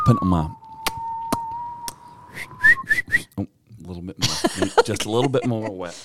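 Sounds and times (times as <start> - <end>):
person whistling through pursed lips: 0.0 - 3.3
speech: 0.1 - 0.6, 4.0 - 6.0
laughter: 4.2 - 6.0.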